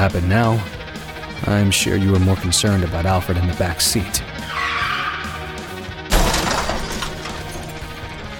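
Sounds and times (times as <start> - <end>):
speech: 0.0 - 0.8, 1.4 - 4.9
car tire skid screeching: 4.4 - 5.8
car crash with shattering crunching debris: 6.1 - 8.0.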